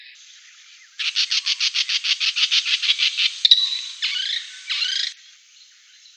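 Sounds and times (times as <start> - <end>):
sacred kingfisher calling: 1.0 - 5.1.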